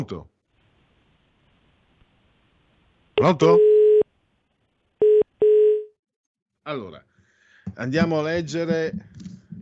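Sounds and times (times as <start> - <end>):
speech: 0.0 - 0.3, 3.2 - 3.7, 6.6 - 7.1, 7.7 - 9.3
electronic telephone line beeps after a dropped call: 3.6 - 4.1, 5.0 - 6.0.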